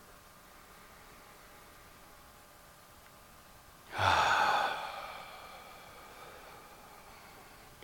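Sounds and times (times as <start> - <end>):
deep breath during a guided breathing exercise: 0.4 - 2.1, 3.9 - 7.8.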